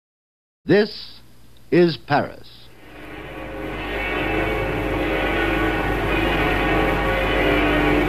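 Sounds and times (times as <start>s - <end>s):
speech: 0.7s - 2.6s
great bells of a cathedral in Paris ringing together: 2.7s - 8.0s.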